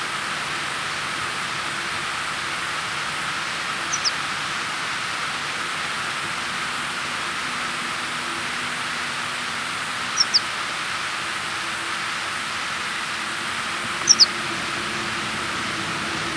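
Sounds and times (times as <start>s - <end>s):
steady hiss: 0.0s - 16.3s
horned lark calls: 3.8s - 4.2s, 10.1s - 10.5s, 14.0s - 14.4s.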